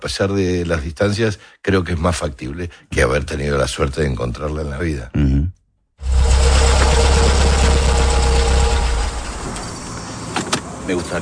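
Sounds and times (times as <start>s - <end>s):
speech: 0.0s - 6.4s, 10.9s - 11.2s
car engine idling: 6.0s - 10.3s.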